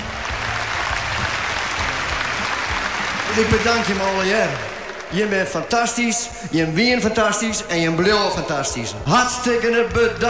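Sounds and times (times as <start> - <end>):
room full of people applauding: 0.0 - 6.3
speech: 3.4 - 10.2.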